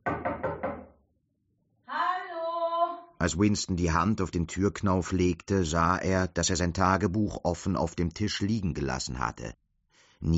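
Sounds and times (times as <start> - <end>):
firm knocking on a wooden apartment door: 0.0 - 1.0
speech: 3.2 - 9.6, 10.2 - 10.3.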